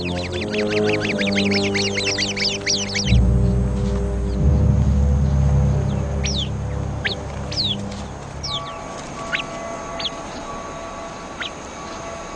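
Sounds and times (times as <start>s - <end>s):
sentry bird alarm calls on spotting a viper: 0.0s - 3.6s, 5.8s - 12.1s
low rumbling background: 0.0s - 12.2s
flock birds chirping and calling coming together for protection: 0.0s - 12.3s.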